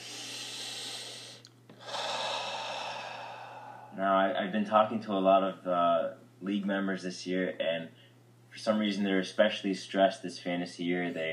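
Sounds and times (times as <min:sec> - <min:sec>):
deep breath: 0:00.0 - 0:04.1
steady low hum: 0:00.0 - 0:11.3
speech: 0:04.0 - 0:08.0, 0:08.6 - 0:11.3.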